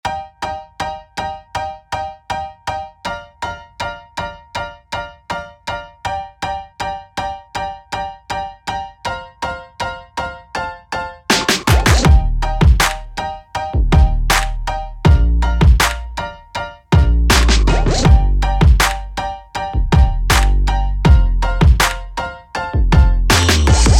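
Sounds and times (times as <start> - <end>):
upbeat piano music: 0.0 - 23.9.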